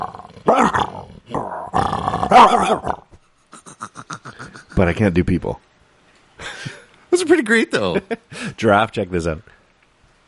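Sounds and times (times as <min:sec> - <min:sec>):
speech: 0:00.0 - 0:03.0, 0:04.8 - 0:05.7, 0:07.2 - 0:09.5
person imitating dog barks and snarls: 0:00.0 - 0:03.1.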